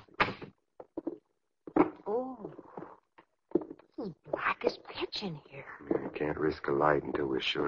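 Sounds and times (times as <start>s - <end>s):
short wooden creaks and knocks: 0.2s - 3.9s
speech: 5.2s - 7.6s.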